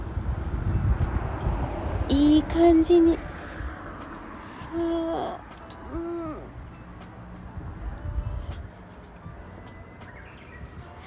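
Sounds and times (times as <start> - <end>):
windy rustling background: 0.0 - 11.0
speech: 2.1 - 3.3, 4.7 - 6.0
Japanese bush warbler singing outdoors: 9.7 - 11.0.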